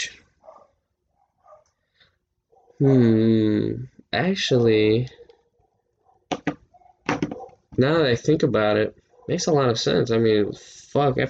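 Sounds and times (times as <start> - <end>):
dogs barking: 0.4 - 2.8, 4.4 - 7.8, 9.0 - 9.6
speech: 2.8 - 5.2, 7.8 - 11.2.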